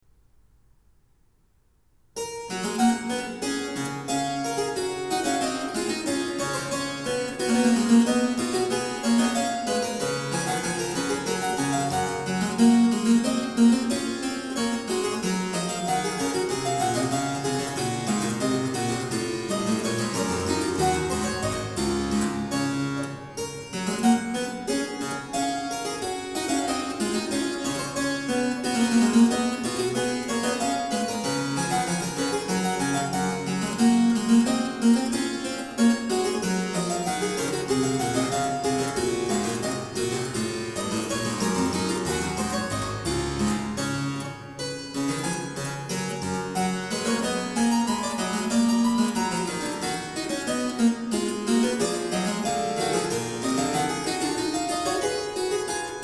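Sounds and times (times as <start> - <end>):
harpsichord canon piece: 2.2 - 56.0.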